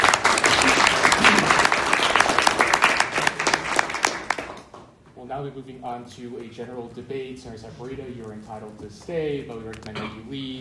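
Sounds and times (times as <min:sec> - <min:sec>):
crowd applauding: 0:00.0 - 0:04.8
speech: 0:05.4 - 0:10.5.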